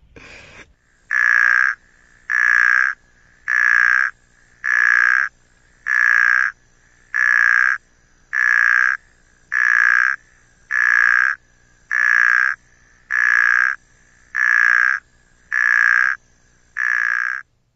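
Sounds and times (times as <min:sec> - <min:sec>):
snoring puddle frog Phrynobatrachus natalensis croaking: 0:00.8 - 0:17.5.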